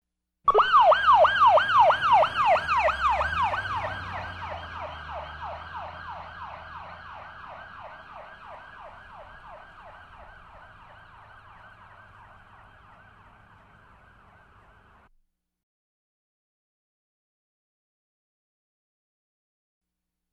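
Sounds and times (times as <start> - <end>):
police car driving away: 0.5 - 15.1
police car siren: 0.5 - 15.1.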